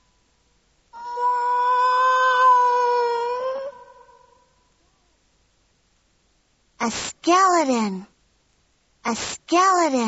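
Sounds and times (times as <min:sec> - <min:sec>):
cat yowling in a long drawn-out wavering yowl: 0:01.0 - 0:04.3
speech: 0:06.9 - 0:08.1, 0:09.1 - 0:10.0.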